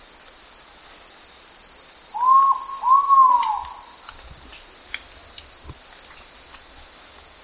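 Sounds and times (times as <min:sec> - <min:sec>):
dense high-pitched insect hum in Indonesia: 0:00.0 - 0:07.4
Ivory-breasted pitta Pitta maxima whistling call in Indonesia: 0:02.2 - 0:03.9.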